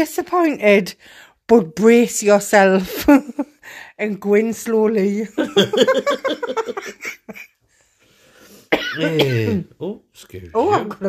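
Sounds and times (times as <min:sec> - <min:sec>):
speech: 0:00.0 - 0:07.5, 0:09.0 - 0:11.0
laughter: 0:05.4 - 0:07.6
person coughing: 0:08.7 - 0:09.7.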